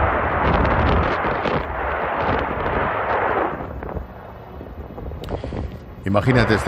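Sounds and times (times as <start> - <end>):
rumbling booms of artillery fire and explosions: 0.0 - 4.1, 6.2 - 6.6
wind buffeting the microphone: 0.0 - 6.6
speech: 6.0 - 6.6.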